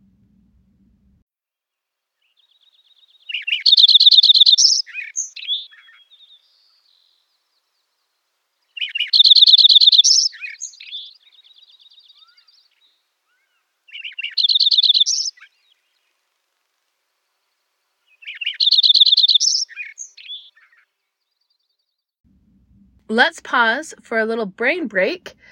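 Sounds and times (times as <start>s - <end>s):
Lincoln's sparrow singing bubbly trilled songs: 2.2s - 16.6s, 18.0s - 22.0s
speech: 23.2s - 25.3s.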